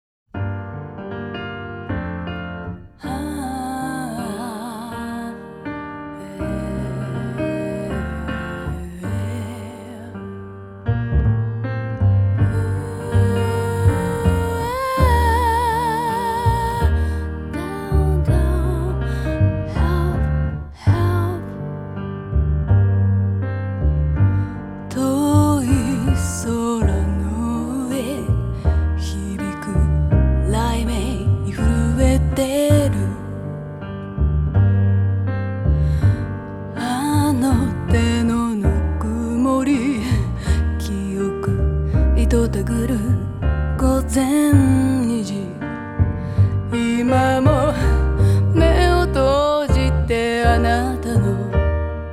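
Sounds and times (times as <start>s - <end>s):
piano: 0.3s - 52.1s
voice: 3.0s - 5.4s, 6.2s - 10.2s, 12.5s - 21.5s, 24.9s - 28.4s, 29.0s - 33.2s, 36.8s - 43.2s, 46.8s - 51.5s.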